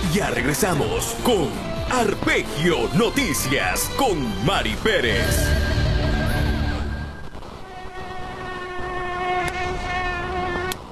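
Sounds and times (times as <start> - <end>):
speech: 0.1 - 5.8
mosquitoes buzzing: 5.5 - 10.9.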